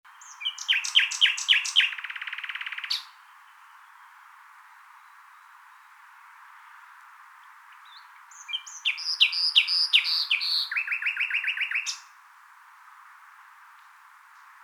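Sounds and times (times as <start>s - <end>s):
common nightingale Luscinia megarhynchos song: 0.1s - 12.2s.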